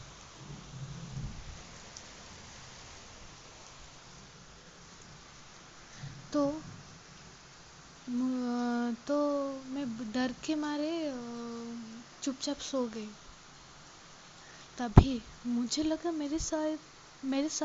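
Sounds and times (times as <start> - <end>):
thunder rumbling: 0.0 - 2.6
heavy rain: 0.0 - 17.6
speech: 10.3 - 11.4, 12.2 - 13.2, 14.8 - 17.6.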